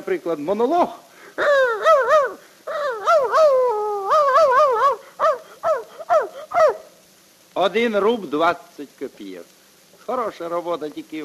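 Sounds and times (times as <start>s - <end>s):
speech: 0.1s - 1.6s, 7.6s - 11.2s
man imitating dog barking and whimpering: 1.4s - 7.0s.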